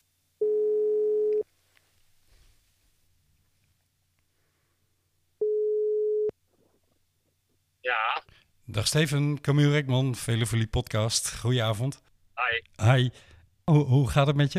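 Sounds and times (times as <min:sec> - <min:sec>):
outgoing telephone call ringing tone: 0:00.4 - 0:01.4, 0:05.4 - 0:06.3
speech: 0:08.7 - 0:14.5.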